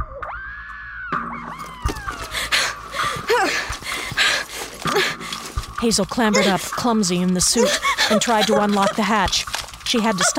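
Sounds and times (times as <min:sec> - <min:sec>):
woman's piercing scream: 0:01.6 - 0:03.8, 0:06.3 - 0:06.7, 0:07.5 - 0:09.1
woman gasping: 0:02.1 - 0:05.6, 0:06.3 - 0:06.7, 0:07.6 - 0:09.0
speech: 0:05.8 - 0:10.3
laughter: 0:06.2 - 0:06.8, 0:07.4 - 0:09.4.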